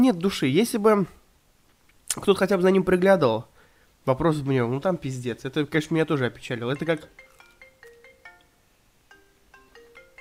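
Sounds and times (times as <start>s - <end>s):
speech: 0.0s - 1.2s, 2.1s - 7.2s
melodic electronic phone ringtone during a call: 6.7s - 10.1s.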